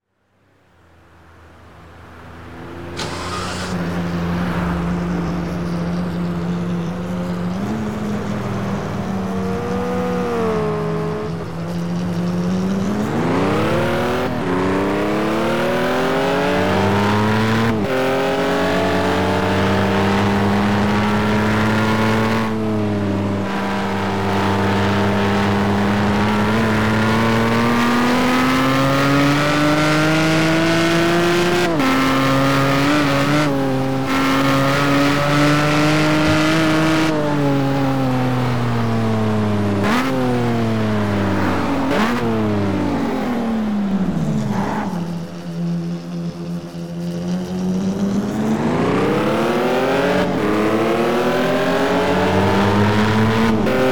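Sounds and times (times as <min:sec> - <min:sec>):
Ferrari 575M sports car engine: 0:00.3 - 0:53.8.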